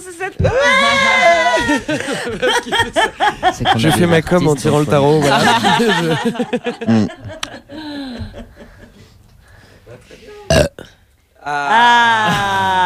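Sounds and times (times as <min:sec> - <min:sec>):
speech: 0:00.0 - 0:00.8, 0:01.8 - 0:07.8, 0:11.4 - 0:12.8
people chuckling and laughing: 0:00.7 - 0:10.5
loud drawn-out burp into the microphone: 0:06.8 - 0:07.4, 0:10.5 - 0:11.0.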